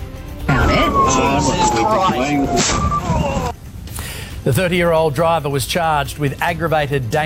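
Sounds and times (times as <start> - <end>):
indistinct voices: 0.5 - 3.5
emergency siren on a personal car wailing: 0.5 - 3.6
speech: 1.1 - 3.5, 4.4 - 7.2.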